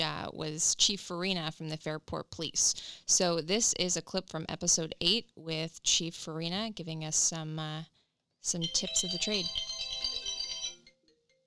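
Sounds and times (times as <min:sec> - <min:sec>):
speech: 0:00.3 - 0:09.7
faint tonal blips: 0:08.6 - 0:10.9
bright electronic mobile phone ringtone: 0:08.6 - 0:11.4.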